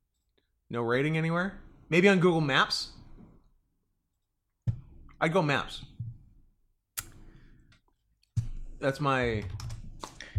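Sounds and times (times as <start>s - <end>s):
speech: 0.7s - 3.0s, 5.2s - 5.9s, 8.8s - 9.6s
typing on a computer keyboard: 9.3s - 10.2s.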